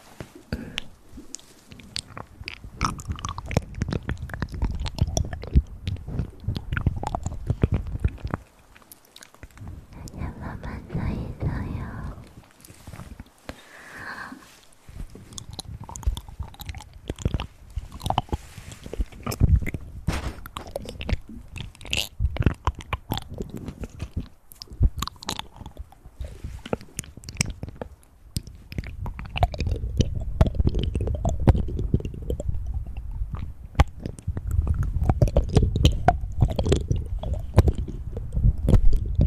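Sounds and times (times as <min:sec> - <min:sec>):
dense wet clicks with chewing-like textures: 0:00.0 - 0:39.2
soft low whooshes of breath at the ear: 0:09.8 - 0:15.2.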